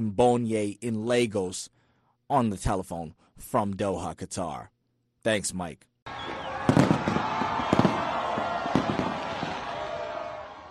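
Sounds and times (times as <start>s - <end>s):
speech: 0.0s - 6.9s
crowd cheering outdoors at celebration parade: 6.1s - 10.6s
firework bangs at celebration parade: 6.3s - 10.4s.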